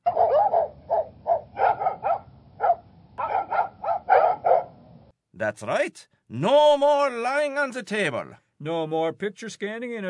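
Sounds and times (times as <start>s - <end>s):
dog barking: 0.0s - 4.8s
speech: 5.4s - 10.0s.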